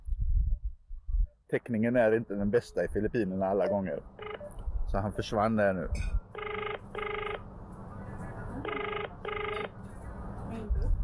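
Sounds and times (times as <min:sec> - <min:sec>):
speech: 0:01.5 - 0:04.2, 0:04.9 - 0:06.2
telephone ringback tone over a noisy line: 0:03.7 - 0:04.6, 0:06.4 - 0:07.4, 0:08.6 - 0:09.8
faint murmur on a muffled phone line: 0:07.4 - 0:11.0.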